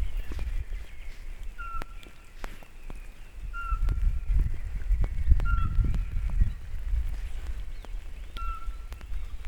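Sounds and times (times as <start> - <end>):
Eurasian pygmy owl calling in a forest: 0.2 - 6.4, 8.2 - 9.4.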